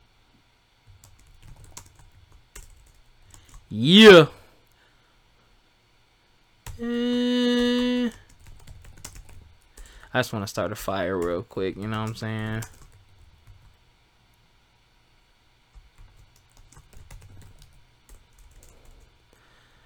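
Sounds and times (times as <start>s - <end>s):
typing on a computer keyboard: 0.9s - 3.7s, 8.2s - 10.1s, 11.2s - 13.8s, 15.7s - 19.1s
person exclaiming: 3.7s - 4.3s, 6.8s - 8.2s
held vocal tone: 3.7s - 4.4s, 6.8s - 8.2s
speech: 3.7s - 4.4s, 10.2s - 12.8s.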